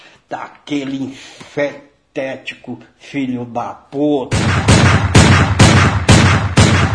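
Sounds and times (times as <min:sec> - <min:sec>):
speech: 0:00.3 - 0:05.6
silver .22 revolver gunshots: 0:04.3 - 0:06.9.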